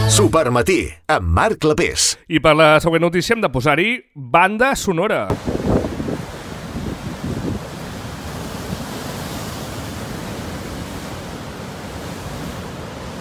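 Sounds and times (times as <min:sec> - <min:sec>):
speech: 0:00.2 - 0:05.9
rough sea waves crashing in a coastal storm: 0:05.3 - 0:13.1
wind-blown surf: 0:05.3 - 0:13.1.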